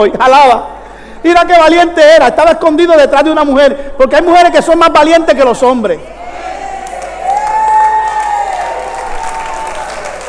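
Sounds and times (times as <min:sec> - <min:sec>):
speech: 0:00.0 - 0:06.2
audience applauding: 0:06.3 - 0:10.2.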